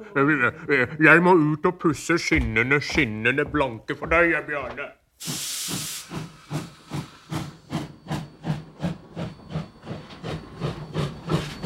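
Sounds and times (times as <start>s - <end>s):
speech: 0.0s - 6.3s
steam train hissing steam: 5.2s - 11.6s.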